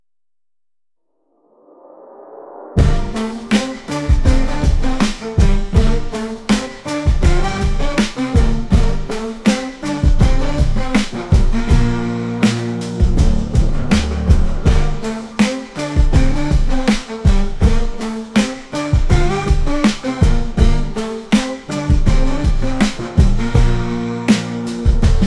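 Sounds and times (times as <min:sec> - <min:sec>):
musical interlude: 0:02.8 - 0:25.2.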